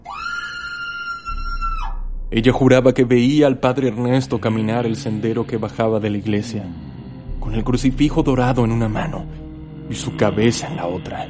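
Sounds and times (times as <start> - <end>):
woman screaming in terror: 0.0 - 2.0
low rumble: 1.2 - 11.2
speech: 2.3 - 11.2.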